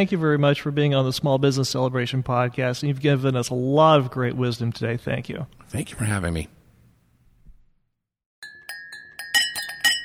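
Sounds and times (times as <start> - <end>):
speech: 0.0 - 6.6
glasses clinking together for a holiday party toast: 8.4 - 10.0.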